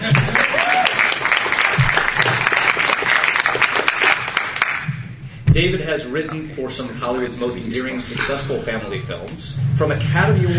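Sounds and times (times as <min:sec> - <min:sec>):
group of people applauding in the room next door: 0:00.0 - 0:05.0
speech: 0:05.6 - 0:10.5.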